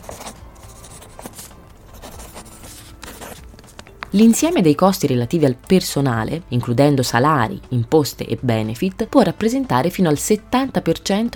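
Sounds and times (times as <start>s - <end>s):
pen writing on paper: 0.0s - 3.8s
speech: 4.1s - 11.3s.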